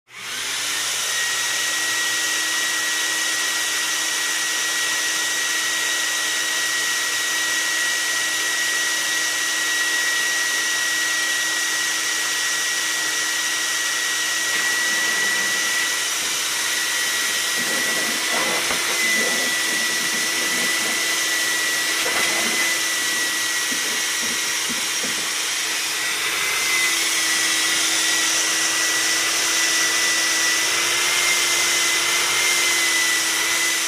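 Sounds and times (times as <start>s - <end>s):
shop vacuum: 0.1s - 33.8s.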